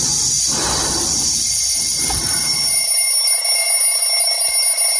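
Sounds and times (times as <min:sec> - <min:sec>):
alarm clock ringing with a shrill metallic buzz: 0:00.2 - 0:04.9.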